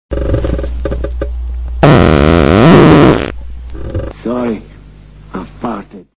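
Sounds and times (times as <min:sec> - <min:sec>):
fart: 0:00.1 - 0:01.2, 0:01.8 - 0:04.1.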